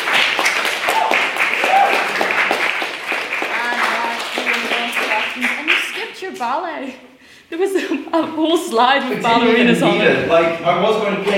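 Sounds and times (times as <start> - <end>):
audience applauding a first-time speaker: 0.0 - 6.4
speech: 6.4 - 11.3.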